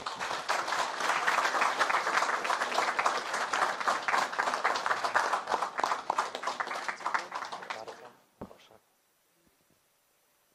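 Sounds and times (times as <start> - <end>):
crowd applauding: 0.0 - 8.1.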